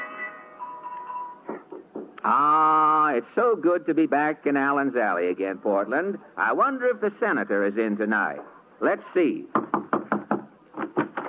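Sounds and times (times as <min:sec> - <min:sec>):
knocking on a door: 0:01.7 - 0:02.2, 0:09.5 - 0:11.2
speech: 0:02.2 - 0:09.6.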